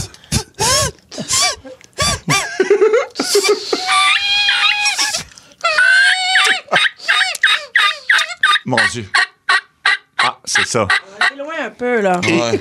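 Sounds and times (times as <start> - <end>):
laughter: 2.2 - 5.1, 12.2 - 12.6
mouth reed call imitating a duck: 3.3 - 11.4
speech: 10.7 - 11.0, 11.8 - 12.6.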